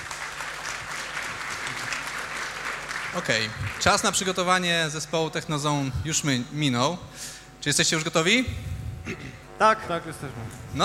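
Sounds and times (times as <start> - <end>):
audience applause: 0.0 - 4.5
speech: 3.1 - 10.8.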